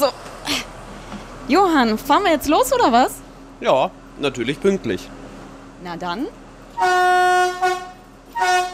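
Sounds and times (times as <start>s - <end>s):
speech: 0.0s - 0.2s, 1.5s - 5.2s, 5.8s - 7.6s
train whistle in Quedlinburg signalling departure: 6.7s - 8.7s.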